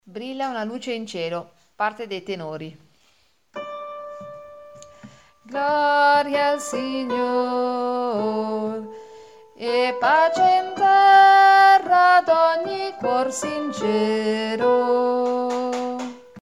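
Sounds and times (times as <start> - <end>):
tenors singing: 5.5 - 8.9, 9.6 - 16.2.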